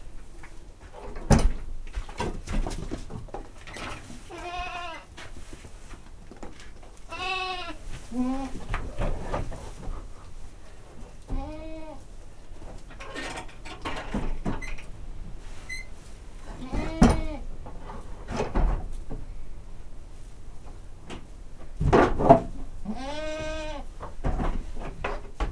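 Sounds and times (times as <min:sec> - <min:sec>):
rustling and clattering noises: 0:00.0 - 0:25.4
domestic goat bleating in a farmyard: 0:04.3 - 0:05.1, 0:07.1 - 0:08.7, 0:11.3 - 0:12.1, 0:16.6 - 0:17.5, 0:22.8 - 0:23.9.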